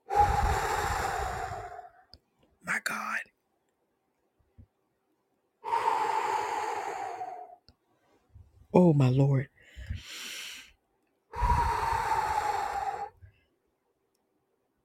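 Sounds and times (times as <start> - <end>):
man breathing heavily with rasping breaths: 0.0 - 2.1, 5.6 - 7.6, 9.6 - 13.4
speech: 8.8 - 10.1.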